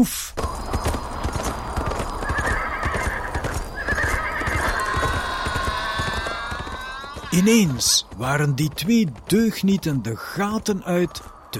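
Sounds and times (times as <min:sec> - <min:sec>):
speech: 0:00.0 - 0:00.4, 0:07.3 - 0:11.5
trotter horse and mule hooves clip-clopping on the way to a water well: 0:00.4 - 0:11.5
horse neighing and whinnying: 0:02.2 - 0:08.1.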